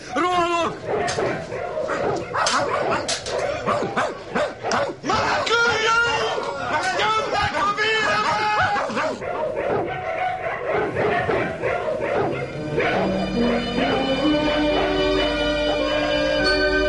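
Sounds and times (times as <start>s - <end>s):
dog barking and yipping excitedly: 0.0s - 16.5s
busy background of voices and commotion: 0.0s - 16.7s.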